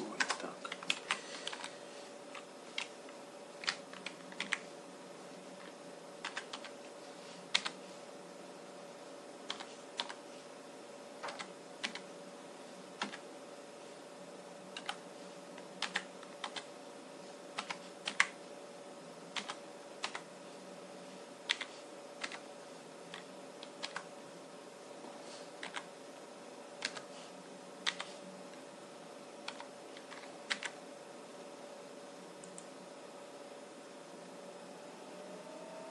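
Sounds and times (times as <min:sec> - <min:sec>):
steady low electrical hum: 0:00.0 - 0:35.8
computer keyboard typing: 0:00.1 - 0:01.7, 0:02.3 - 0:03.0, 0:03.6 - 0:04.7, 0:05.6 - 0:06.7, 0:07.5 - 0:07.8, 0:09.5 - 0:10.2, 0:11.2 - 0:12.1, 0:13.0 - 0:13.2, 0:14.8 - 0:15.0, 0:15.8 - 0:16.7, 0:17.6 - 0:18.4, 0:19.4 - 0:20.3, 0:21.5 - 0:22.5, 0:23.1 - 0:24.1, 0:25.6 - 0:25.9, 0:26.8 - 0:27.1, 0:27.8 - 0:28.1, 0:29.4 - 0:30.8.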